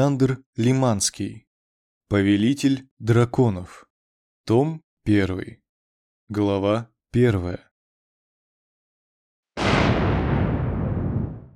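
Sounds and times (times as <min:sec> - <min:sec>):
speech: 0:00.0 - 0:01.4, 0:02.1 - 0:03.9, 0:04.5 - 0:05.6, 0:06.3 - 0:07.7
loud explosion with deep broadband rumbling roar: 0:09.6 - 0:11.5.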